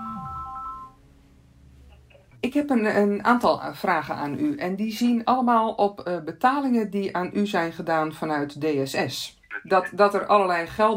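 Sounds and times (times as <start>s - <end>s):
telephone ringing tone as a phone call is placed: 0.0s - 0.9s
speech: 2.4s - 10.9s.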